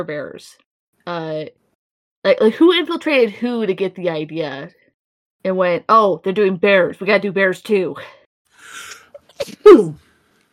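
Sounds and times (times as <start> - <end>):
speech: 0.0 - 1.6, 2.2 - 4.8, 5.4 - 10.0
sneeze: 9.2 - 10.0.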